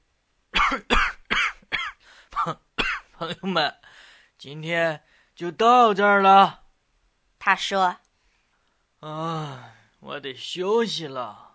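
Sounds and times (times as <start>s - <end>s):
person coughing: 0.6s - 3.2s
speech: 2.4s - 3.8s, 4.4s - 6.6s, 7.4s - 8.0s, 9.0s - 11.5s.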